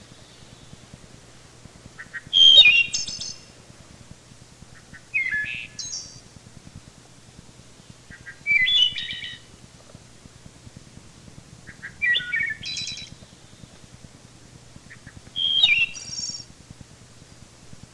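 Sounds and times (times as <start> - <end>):
wood thrush song: 0.0 - 1.1, 2.0 - 3.6, 4.7 - 7.0, 7.7 - 9.6, 11.6 - 16.5.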